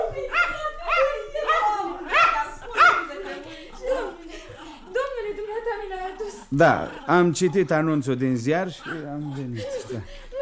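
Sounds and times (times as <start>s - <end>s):
laughter: 0.0s - 10.4s
small dog barking: 0.3s - 3.1s
speech: 6.5s - 10.3s.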